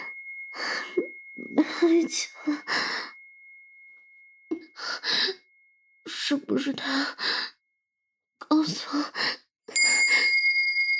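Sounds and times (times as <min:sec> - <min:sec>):
bell ringing: 0:00.0 - 0:06.4, 0:09.7 - 0:10.9
speech: 0:01.8 - 0:03.1, 0:06.3 - 0:07.5.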